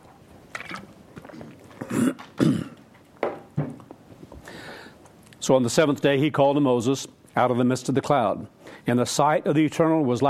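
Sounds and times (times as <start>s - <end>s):
person clearing throat while reading a scripture passage aloud: 1.8s - 2.8s
person coughing with rough raspy hacks: 1.8s - 2.8s
speech: 5.5s - 10.2s.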